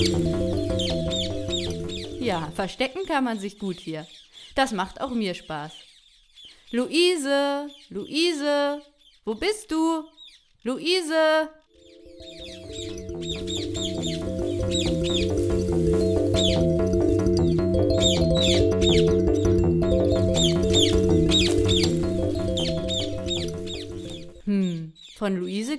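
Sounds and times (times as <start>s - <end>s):
many birds chirping in an aviary: 0.0s - 25.7s
speech: 2.3s - 5.8s, 6.7s - 11.6s, 12.2s - 16.8s, 18.0s - 21.5s, 25.2s - 25.7s
steady droning low tone: 12.0s - 24.4s.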